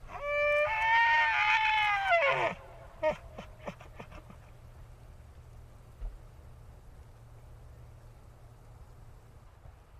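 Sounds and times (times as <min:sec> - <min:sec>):
elk bellowing in forest: 0:00.0 - 0:04.5.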